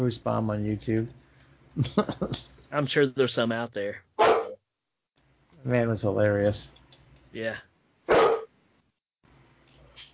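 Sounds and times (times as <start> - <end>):
speech: 0.0 - 1.2, 1.8 - 4.3, 5.6 - 7.7
dog barking: 4.2 - 4.6, 8.1 - 8.5.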